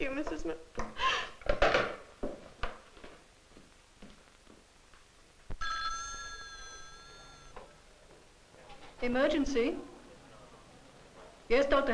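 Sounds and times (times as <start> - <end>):
speech: 0.0 - 1.0, 9.0 - 9.9, 11.5 - 11.9
telephone bell ringing: 5.6 - 7.6.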